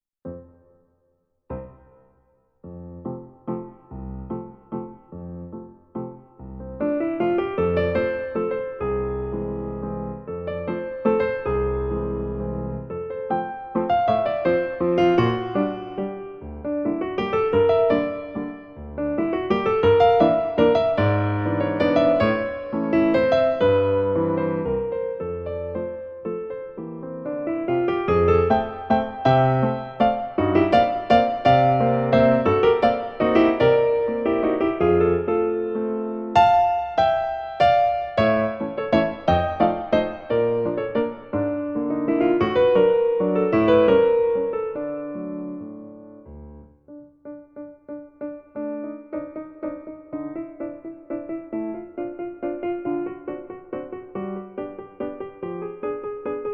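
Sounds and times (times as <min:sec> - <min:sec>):
fast lyrical waltz: 0:02.9 - 0:46.2, 0:48.0 - 0:56.5.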